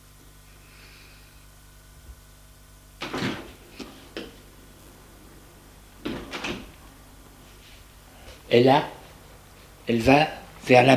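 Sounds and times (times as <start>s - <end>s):
low steady hum: 0.0s - 10.9s
door opening with clunks: 6.0s - 6.8s
speech: 8.5s - 9.0s, 9.9s - 10.9s.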